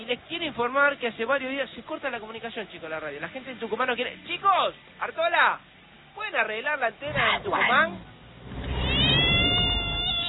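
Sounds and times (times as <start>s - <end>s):
speech: 0.1s - 8.6s
cat meowing: 8.6s - 10.2s.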